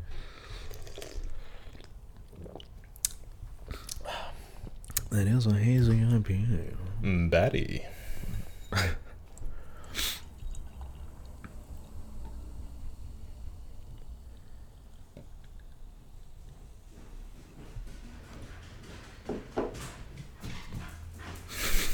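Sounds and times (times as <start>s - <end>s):
low rumble: 3.2s - 19.2s
speech: 5.2s - 8.0s
female dog running down a staircase: 16.8s - 21.9s.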